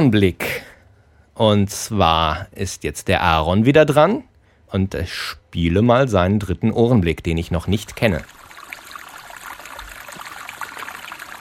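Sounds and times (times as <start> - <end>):
speech: 0.0 - 0.7, 1.4 - 8.4
small mountain brook babbling in Mount Field National Park Tasmania: 8.2 - 11.3.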